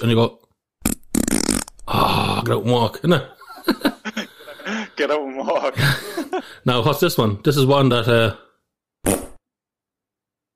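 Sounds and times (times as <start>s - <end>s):
speech: 0.0s - 0.4s, 1.9s - 3.9s, 5.0s - 8.4s
short soft fart: 0.8s - 1.8s, 9.0s - 9.4s
laughter: 3.2s - 6.6s.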